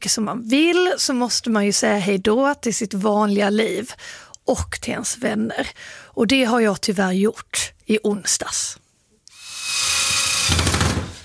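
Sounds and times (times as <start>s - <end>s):
speech: 0.0s - 8.8s
power screwdriver driving screws to assemble a sign: 9.3s - 11.2s.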